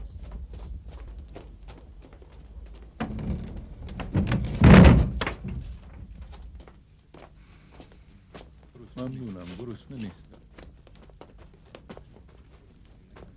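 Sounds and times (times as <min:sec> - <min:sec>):
light footsteps: 0:00.0 - 0:04.2, 0:05.2 - 0:13.3
heavy wooden doors swinging shut with a thud and rattle: 0:03.0 - 0:06.1.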